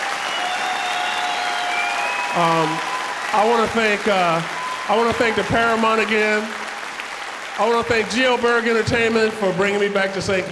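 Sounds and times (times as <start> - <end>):
faint whistles: 0.0 - 3.4
dense applause from a large crowd: 0.0 - 10.4
speech: 2.3 - 6.6, 7.6 - 10.4.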